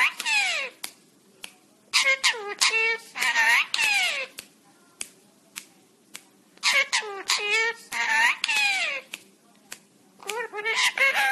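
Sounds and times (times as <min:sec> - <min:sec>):
parrot calling: 0:00.0 - 0:00.8, 0:01.9 - 0:04.4, 0:06.6 - 0:09.1, 0:10.3 - 0:11.3.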